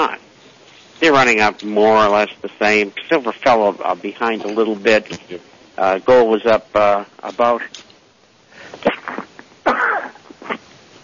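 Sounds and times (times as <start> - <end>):
speech: 1.0 - 7.8
faint exhale: 8.5 - 8.9
sneeze: 8.8 - 10.6.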